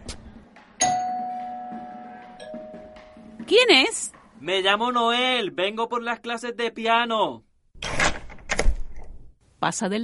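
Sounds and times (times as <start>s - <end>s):
doorbell chiming: 0.8s - 3.2s
speech: 3.5s - 7.5s, 9.6s - 10.0s.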